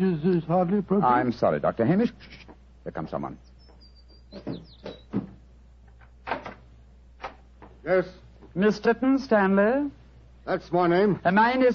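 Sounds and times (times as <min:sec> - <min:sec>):
speech: 0:00.0 - 0:03.5, 0:04.3 - 0:05.3, 0:07.8 - 0:11.7
door squeaking open: 0:03.8 - 0:05.3.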